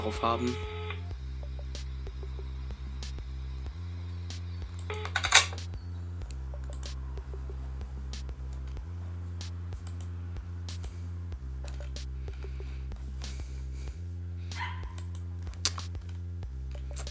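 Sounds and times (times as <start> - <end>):
speech: 0.0 - 0.8
low electrical hum: 0.0 - 17.0
dog barking: 14.6 - 15.0.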